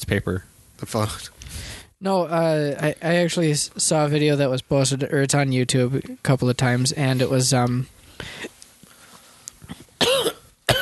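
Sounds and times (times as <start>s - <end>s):
speech: 0.1s - 8.5s
soft rustles: 7.9s - 10.0s
person coughing: 9.7s - 10.7s.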